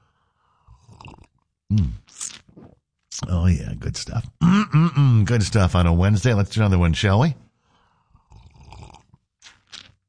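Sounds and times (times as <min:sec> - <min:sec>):
person slurping hot coffee: 0:00.8 - 0:02.8, 0:08.2 - 0:10.0
speech: 0:01.7 - 0:02.2, 0:03.3 - 0:07.4
soft mouth noises: 0:01.7 - 0:03.4, 0:04.0 - 0:05.3
short voiced grunt: 0:04.4 - 0:05.2.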